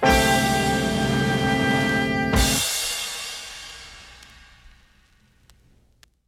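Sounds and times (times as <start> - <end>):
cymbal crash music effect: 0.1 - 5.1.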